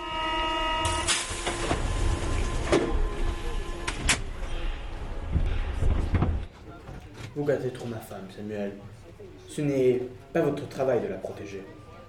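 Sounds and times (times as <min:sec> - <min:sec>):
metro train rumbling into motion with rattling clanks: 0:00.0 - 0:07.4
metro car doors sliding shut: 0:00.0 - 0:07.5
speech: 0:07.4 - 0:11.8.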